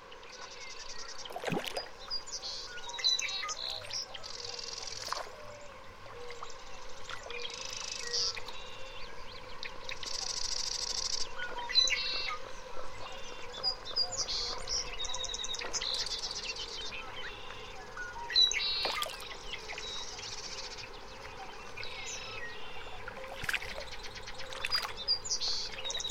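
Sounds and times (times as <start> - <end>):
birds calling around a mountain lake: 0.0 - 26.1
soft constant hum of insects: 0.0 - 26.1
sharp brief ticks or small splashes: 1.2 - 1.9, 18.8 - 19.4, 23.2 - 25.9.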